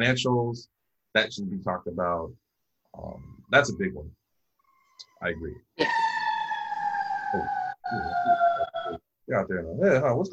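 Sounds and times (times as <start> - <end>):
speech: 0.0 - 4.2, 5.2 - 6.0, 7.3 - 10.3
ambulance siren wailing outside in a downtown area: 5.9 - 9.0.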